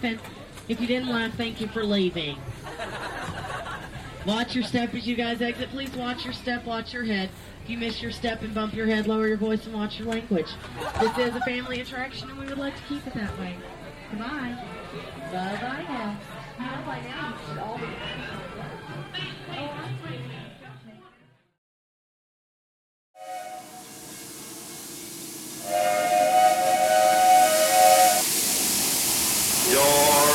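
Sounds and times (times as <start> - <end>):
speech: 0.0 - 2.9, 4.2 - 18.4
laughter: 2.5 - 4.2, 10.6 - 11.8
steam train hissing steam: 23.2 - 30.3.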